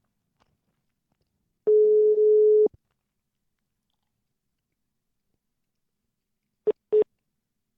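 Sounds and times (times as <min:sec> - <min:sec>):
telephone ringback tone during an outgoing call: 0:01.7 - 0:02.7.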